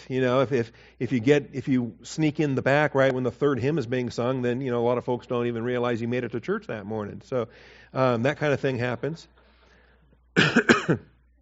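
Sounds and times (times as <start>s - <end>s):
speech: 0.1s - 9.4s, 10.4s - 11.1s
cough and throat clearing: 10.4s - 11.2s.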